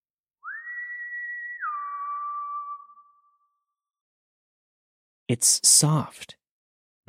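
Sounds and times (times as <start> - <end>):
man whistling two notes: 0.4 - 3.0
whistle echo off a tall rock wall: 0.4 - 3.7
speech: 5.3 - 6.4.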